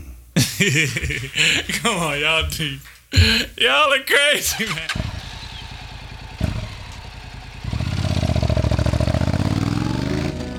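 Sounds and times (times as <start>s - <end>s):
laughter: 0.4s - 3.5s, 4.4s - 5.0s
speech: 0.6s - 5.0s
motorcycle engine idling and revving: 4.9s - 9.8s.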